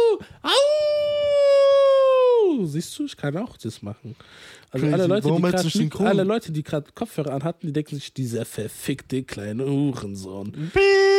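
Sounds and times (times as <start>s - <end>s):
person imitating a wolf howl: 0.0s - 2.6s, 10.7s - 11.1s
speech: 2.8s - 11.1s.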